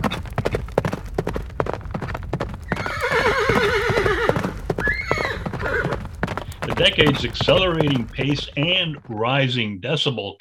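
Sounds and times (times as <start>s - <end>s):
hooves clip-clopping: 0.0s - 10.1s
horse neighing: 2.7s - 8.9s
speech: 6.8s - 10.3s.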